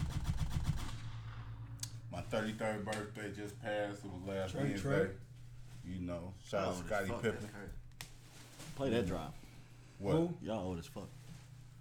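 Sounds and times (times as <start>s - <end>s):
gunshot sound effects burst: 0.0s - 1.8s
low rumble: 0.0s - 4.1s
speech: 2.2s - 7.8s, 8.8s - 9.4s, 10.0s - 11.2s.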